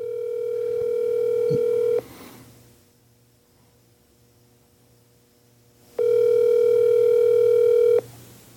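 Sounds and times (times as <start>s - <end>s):
phone ringback tone: 0.0s - 2.0s, 6.0s - 8.0s
faint low hum: 0.0s - 8.5s.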